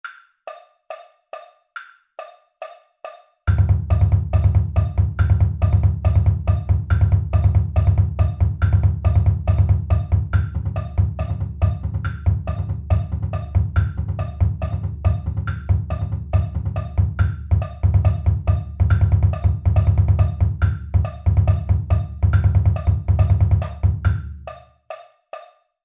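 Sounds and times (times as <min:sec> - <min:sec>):
triple beat bass: 0:03.5 - 0:24.6.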